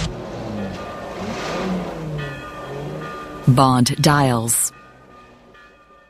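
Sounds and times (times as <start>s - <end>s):
guard's car engine revving and accelerating as it pulls onto the road: 0.0s - 3.2s
speech: 3.5s - 4.6s.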